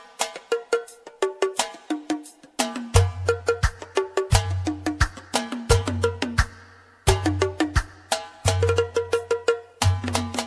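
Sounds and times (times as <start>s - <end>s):
Arabic drums: 0.3s - 10.4s.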